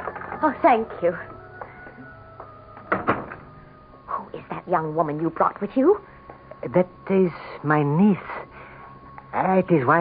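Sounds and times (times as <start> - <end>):
low steady room hum: 0.0 - 10.0
speech: 0.4 - 1.4, 4.7 - 8.4, 9.4 - 10.0
door knocking thuds: 2.4 - 3.6.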